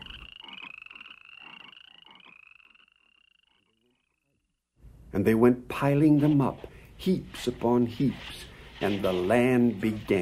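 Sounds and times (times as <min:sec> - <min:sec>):
chorus of frogs croaking: 0:00.0 - 0:04.8
speech: 0:05.2 - 0:10.1.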